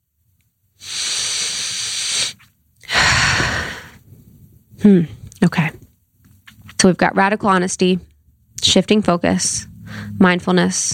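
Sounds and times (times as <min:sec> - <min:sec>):
deep breaths taken in and out during a guided pause: 0:00.8 - 0:04.1, 0:09.8 - 0:10.2
speech: 0:04.8 - 0:05.8, 0:06.8 - 0:08.1, 0:08.7 - 0:10.9.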